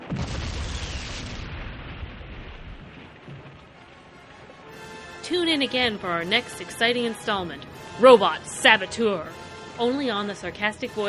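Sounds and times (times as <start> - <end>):
zeppelin airship crashing and exploding in flames: 0.0 - 4.1
speech: 5.3 - 11.0.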